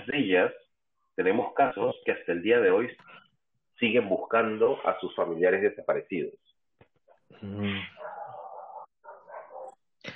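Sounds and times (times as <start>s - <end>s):
speech: 0.0s - 0.6s, 1.2s - 3.2s, 3.8s - 6.5s, 7.3s - 8.2s
dog barking: 8.0s - 9.9s.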